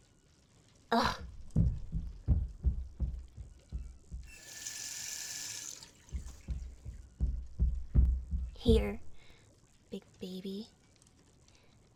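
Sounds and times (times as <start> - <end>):
speech: 0.9 - 1.2, 8.6 - 9.0
soft low thumps: 1.2 - 4.4, 6.0 - 9.3
water being poured for taking pills: 4.3 - 6.6.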